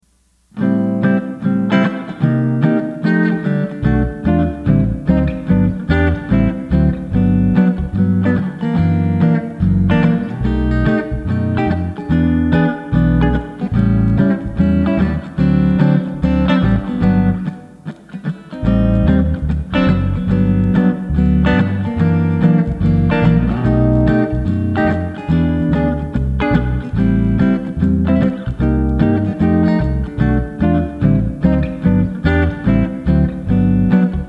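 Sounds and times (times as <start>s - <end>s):
backing track in G in first position: 1.2s - 34.2s.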